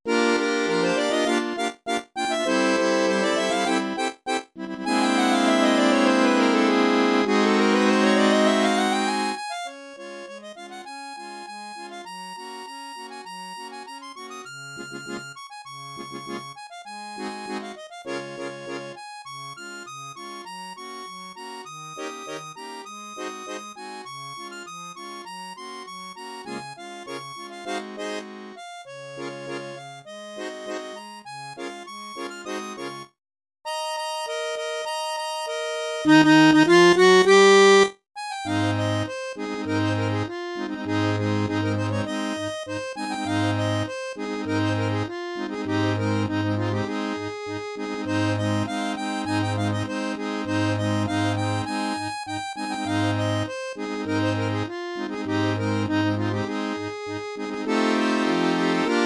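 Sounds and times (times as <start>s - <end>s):
synthesized harmonica: 0.1s - 33.1s, 33.7s - 59.0s.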